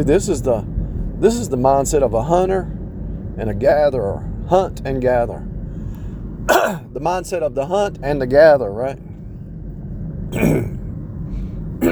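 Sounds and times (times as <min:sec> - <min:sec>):
speech: 0:00.0 - 0:02.8, 0:03.4 - 0:05.5, 0:06.4 - 0:09.1, 0:10.3 - 0:10.8
person coughing harshly: 0:06.5 - 0:06.9, 0:10.4 - 0:10.8.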